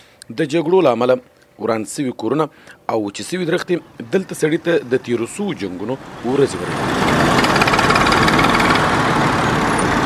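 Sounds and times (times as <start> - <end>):
speech: 0.3 - 7.1
old motorcycle engine running: 6.2 - 10.0.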